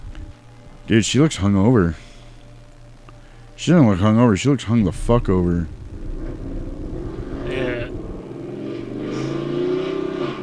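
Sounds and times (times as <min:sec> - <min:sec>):
speech: 0:00.9 - 0:02.0, 0:03.6 - 0:05.8
truck engine revving outside: 0:04.9 - 0:10.4.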